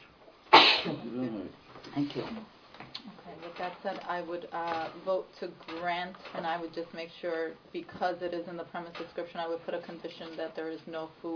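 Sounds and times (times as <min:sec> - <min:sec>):
single sharp loud sneeze: 0:00.5 - 0:01.1
speech: 0:00.8 - 0:11.3.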